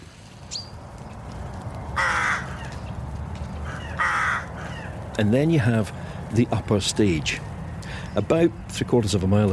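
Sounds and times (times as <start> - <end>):
rooks cawing at a rookery: 1.8 - 5.2
speech: 5.2 - 7.5, 8.2 - 9.5.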